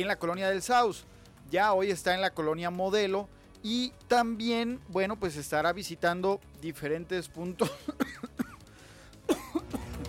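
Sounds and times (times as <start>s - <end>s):
speech: 0.0s - 8.0s
person coughing: 7.6s - 8.6s, 9.3s - 10.0s.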